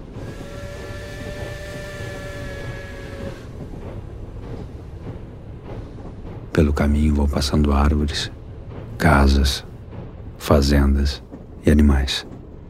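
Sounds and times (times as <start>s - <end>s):
rhythmic clanking and chugging of a steam train: 0.0s - 12.6s
steam train rumbling along an old railway: 0.0s - 12.6s
whistle-like hiss of a steam train: 0.1s - 3.6s
speech: 6.6s - 8.4s, 9.0s - 9.7s, 10.4s - 12.3s.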